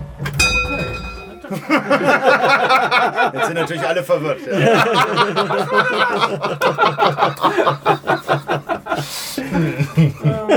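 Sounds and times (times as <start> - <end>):
clock bell striking the full hour: 0.3 - 2.7
laughter: 1.4 - 10.5
speech: 1.5 - 10.5.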